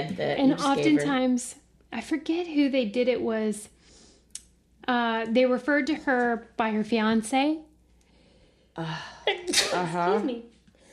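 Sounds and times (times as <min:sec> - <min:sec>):
speech: 0:00.0 - 0:03.8, 0:04.8 - 0:07.7, 0:08.8 - 0:10.5
sneeze: 0:09.5 - 0:10.0.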